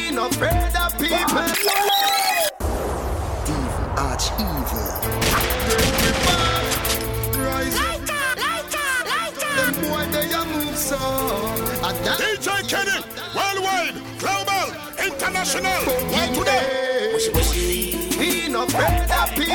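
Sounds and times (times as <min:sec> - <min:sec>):
speech: 0:00.2 - 0:02.5, 0:03.5 - 0:06.6, 0:07.4 - 0:08.1, 0:09.6 - 0:19.5
gunshot sound effects in rapid volleys: 0:02.6 - 0:07.6
voice chanting: 0:03.4 - 0:19.5
busy music track: 0:05.0 - 0:19.5.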